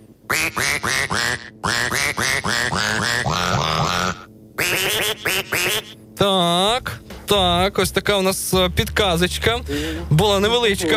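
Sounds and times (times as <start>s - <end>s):
loud nasal duck quacks forming a song melody: 0.3s - 6.0s
speech: 7.3s - 10.9s.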